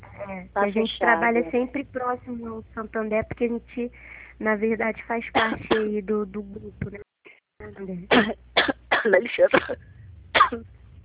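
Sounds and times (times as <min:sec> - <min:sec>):
low hum: 0:00.0 - 0:11.0
speech: 0:00.2 - 0:10.8
harsh throaty coughs: 0:08.1 - 0:09.8, 0:10.4 - 0:10.6.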